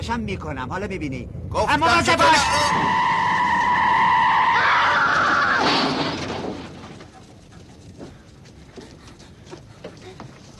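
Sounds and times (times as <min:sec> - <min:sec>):
speech: 0:00.0 - 0:03.1
car tires screeching from hard braking: 0:01.6 - 0:06.8.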